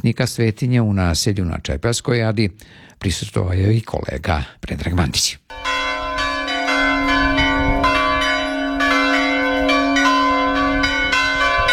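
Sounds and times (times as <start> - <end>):
speech: 0.0 - 5.7
Serbian Orthodox church bell ringing for a feast day: 5.5 - 11.7.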